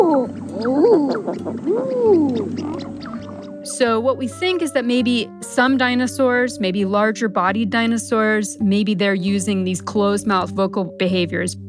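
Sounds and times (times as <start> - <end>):
eider duck crooning cooing call: 0.0 - 3.6
speech: 3.8 - 11.6.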